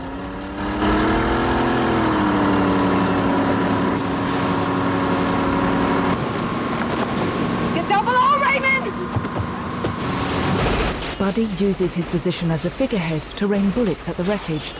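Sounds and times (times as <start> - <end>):
motorboat engine surging forward under throttle: 0.0 - 14.7
rushing water and wash from a motorboat: 2.8 - 14.7
speech: 11.3 - 14.7.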